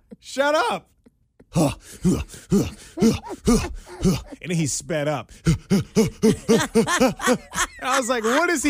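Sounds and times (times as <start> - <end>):
speech: 0.2 - 8.6
voice imitating heavy panting of a man on a gym treadmill: 1.4 - 7.4
laughter: 2.7 - 4.6, 5.7 - 8.6.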